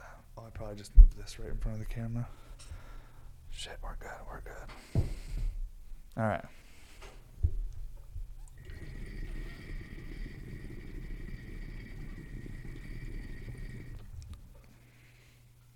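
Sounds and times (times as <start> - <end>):
speech: 0.6 - 2.8, 3.6 - 5.2, 6.2 - 6.6
water bubbling and gurgling through a bong percolator with splash guard: 8.4 - 14.7.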